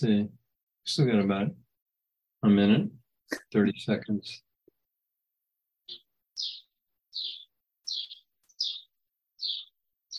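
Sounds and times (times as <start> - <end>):
speech: 0.0 - 1.6, 2.4 - 4.4
bird chirping through an open back door: 5.8 - 10.1.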